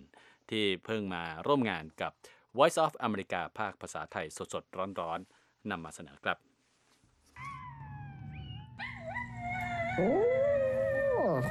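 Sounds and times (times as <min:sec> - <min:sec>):
speech: 0:00.5 - 0:06.5, 0:10.0 - 0:10.3, 0:11.2 - 0:11.5
small dog howling: 0:07.4 - 0:11.5.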